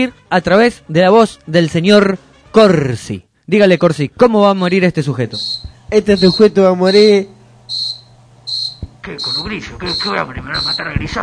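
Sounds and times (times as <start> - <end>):
speech: 0.0 - 7.4, 9.0 - 11.2
cricket chirping: 5.4 - 11.0.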